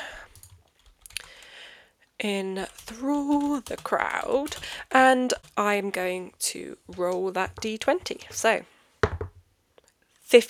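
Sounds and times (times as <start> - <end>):
typing on a computer keyboard: 0.3 - 1.5, 2.6 - 5.8, 6.9 - 8.5
speech: 2.2 - 8.7, 10.3 - 10.4.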